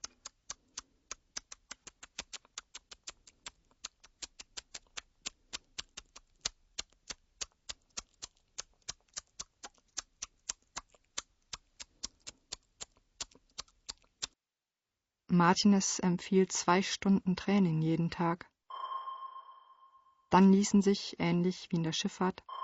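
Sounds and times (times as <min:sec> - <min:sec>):
tongue clicks against the palate for echolocation: 0:00.0 - 0:14.4
speech: 0:15.4 - 0:18.5, 0:20.3 - 0:22.4.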